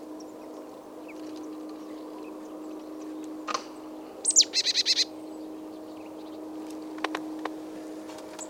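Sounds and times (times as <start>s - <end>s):
steady low hum: 0.0s - 8.4s
marsh tit Poecile palustris call: 4.2s - 5.3s.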